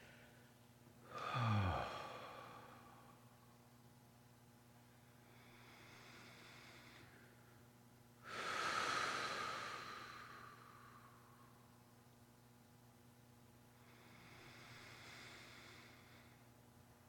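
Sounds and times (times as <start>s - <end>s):
deep inhales and exhales during a guided breathing exercise: 1.0s - 3.4s, 5.1s - 7.4s, 8.2s - 11.6s, 13.8s - 16.5s.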